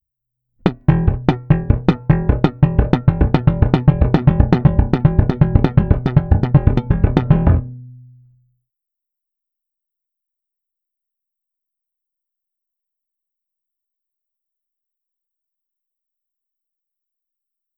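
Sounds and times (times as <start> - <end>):
slap bass exercise playing triplets: 0.6 - 8.2.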